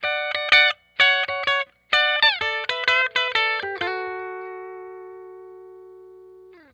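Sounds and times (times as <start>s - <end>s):
high melody: 0.0s - 6.6s.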